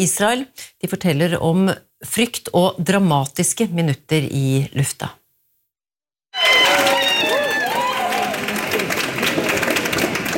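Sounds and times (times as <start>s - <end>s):
speech: 0.0s - 5.2s
excited voices shouting and whooping: 6.4s - 8.7s
crowd cheering welcoming passengers at airport: 6.4s - 10.3s
scattered clapping: 6.4s - 10.3s.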